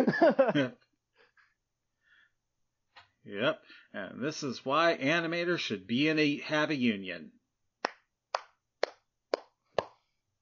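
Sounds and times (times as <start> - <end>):
laughter: 0.0 - 0.7
speech: 0.0 - 0.8, 3.2 - 7.4
person clapping hands: 7.8 - 10.0.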